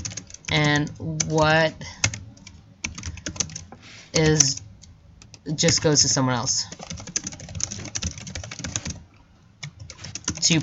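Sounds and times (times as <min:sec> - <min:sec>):
keyboard typing: 0:00.0 - 0:05.9, 0:06.7 - 0:09.0, 0:09.6 - 0:10.6
speech: 0:00.5 - 0:02.0, 0:04.2 - 0:04.6, 0:05.5 - 0:06.9, 0:10.5 - 0:10.6.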